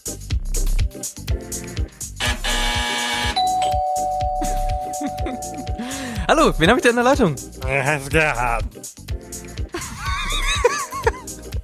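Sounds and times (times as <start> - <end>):
bright ding-dong buzzer chime: 2.2 - 6.1
people laughing: 4.4 - 6.2, 9.8 - 11.4
speech: 6.3 - 8.8.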